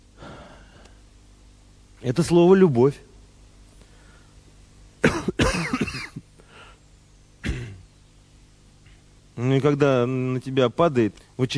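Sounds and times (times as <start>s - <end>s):
speech: 2.0s - 3.1s, 9.6s - 11.5s
deliberate throat-clearing cough with rough hacks: 5.0s - 6.3s, 7.4s - 7.8s.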